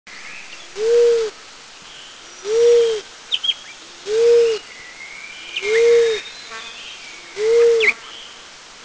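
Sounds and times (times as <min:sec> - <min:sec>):
Barred Cuckoo Dove calling in Mishmi India: 0:00.6 - 0:01.4, 0:02.4 - 0:08.2.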